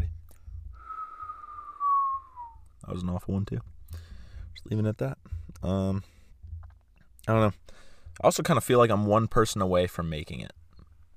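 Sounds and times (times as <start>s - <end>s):
feeble attempted whistle: 0.7s - 2.6s
speech: 2.9s - 3.8s, 4.6s - 6.1s, 7.2s - 10.6s.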